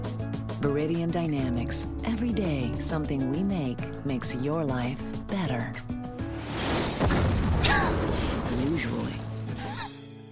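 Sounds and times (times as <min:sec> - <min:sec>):
speech: 0:00.6 - 0:05.9
brief sharp crackles: 0:06.3 - 0:09.6
explosion of a missile hitting something: 0:06.4 - 0:09.1.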